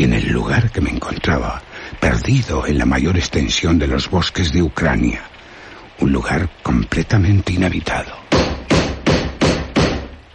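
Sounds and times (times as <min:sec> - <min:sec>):
speech: 0:00.0 - 0:05.3, 0:06.0 - 0:08.2
heavy knocking low on a wooden door: 0:08.3 - 0:10.1.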